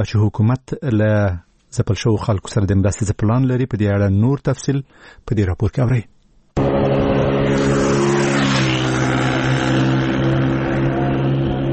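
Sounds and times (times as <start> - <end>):
speech: 0.0 - 6.8
old motorcycle engine ridden fast: 6.6 - 11.7.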